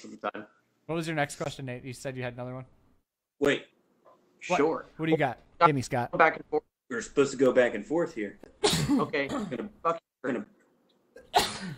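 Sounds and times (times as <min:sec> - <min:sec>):
speech: 0:00.0 - 0:02.8, 0:03.4 - 0:03.8, 0:04.4 - 0:10.5
person sneezing: 0:08.6 - 0:09.1, 0:11.2 - 0:11.7.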